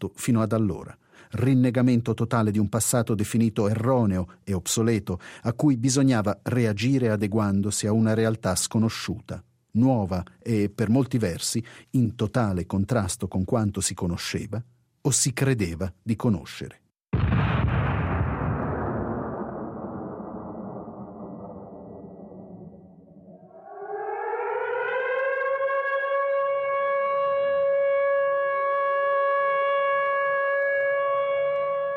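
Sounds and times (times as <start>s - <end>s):
speech: 0.0s - 16.8s
cannon blast in an avant-garde musical work: 17.1s - 22.9s
factory sirens: 21.8s - 31.9s.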